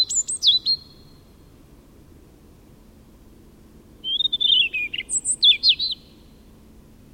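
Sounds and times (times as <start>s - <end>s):
European robin Erithacus rubecula singing: 0.0s - 1.4s, 4.0s - 6.4s.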